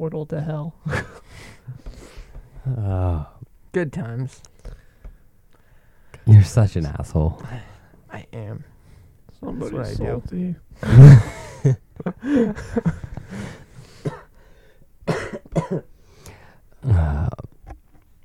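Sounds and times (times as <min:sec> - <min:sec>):
speech: 0:00.0 - 0:01.9, 0:02.6 - 0:04.5, 0:06.3 - 0:08.7, 0:09.4 - 0:13.6
person coughing harshly: 0:14.0 - 0:14.3, 0:15.1 - 0:15.9
throat sounds: 0:16.8 - 0:17.6.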